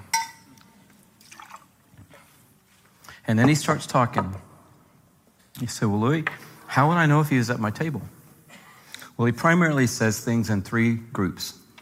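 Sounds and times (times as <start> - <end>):
glass clinking: 0.0 - 1.6
liquid pouring into a glass: 1.2 - 1.8
speech: 3.3 - 4.5, 5.6 - 8.2, 9.2 - 11.6.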